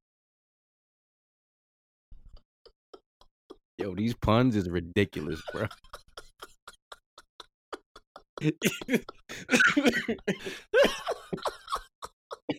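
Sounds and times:
speech: 0:03.8 - 0:06.0, 0:08.4 - 0:11.5
laughter: 0:03.8 - 0:12.5
person coughing in a harsh fit: 0:07.8 - 0:11.8.

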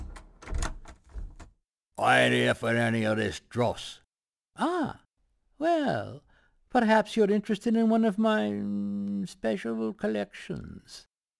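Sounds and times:
door lock clicking shut: 0:00.0 - 0:01.6
speech: 0:02.0 - 0:04.0, 0:04.6 - 0:05.0, 0:05.6 - 0:11.1.

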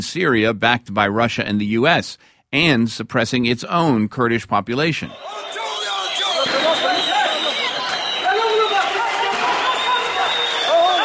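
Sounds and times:
speech: 0:00.0 - 0:05.6
crowd of thousands of demonstrators shouting in the streets: 0:05.1 - 0:11.0.

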